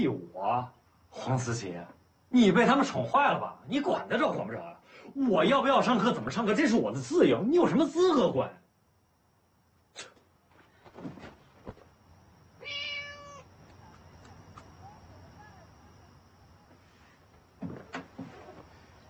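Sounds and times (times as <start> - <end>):
speech: 0.0 - 8.6
cat meowing: 12.6 - 13.5.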